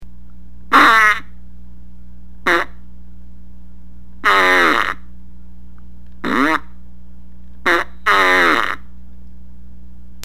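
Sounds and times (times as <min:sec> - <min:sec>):
fart machine farts: 0:02.5 - 0:02.8, 0:04.2 - 0:05.1, 0:06.2 - 0:06.7, 0:07.6 - 0:08.9.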